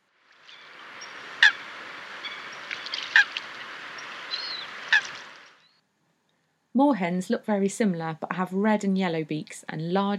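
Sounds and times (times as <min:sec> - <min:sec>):
steady outdoor wash: 0:00.0 - 0:05.8
coots calling and quarrelling: 0:00.5 - 0:05.8
speech: 0:06.8 - 0:10.1.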